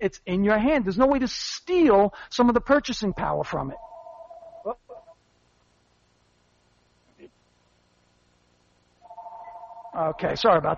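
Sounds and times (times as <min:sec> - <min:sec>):
speech: 0:00.0 - 0:03.9, 0:10.0 - 0:10.7
phone ringing in short warbling tonal bursts: 0:03.8 - 0:05.2, 0:09.0 - 0:10.7.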